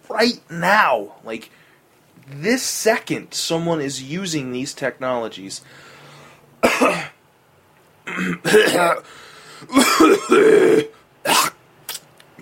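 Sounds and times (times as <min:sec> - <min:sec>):
speech: 0:00.1 - 0:01.6, 0:02.3 - 0:05.9, 0:08.2 - 0:11.5
person clearing their throat: 0:06.6 - 0:07.2, 0:08.1 - 0:09.0, 0:09.7 - 0:12.0
person coughing: 0:06.6 - 0:07.2, 0:08.1 - 0:11.6.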